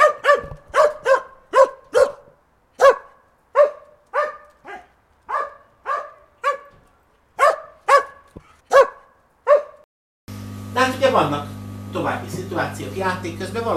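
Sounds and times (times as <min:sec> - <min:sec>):
dog barking at a stranger at the garden gate: 0:00.0 - 0:06.8, 0:07.4 - 0:09.9
speech: 0:10.8 - 0:13.7.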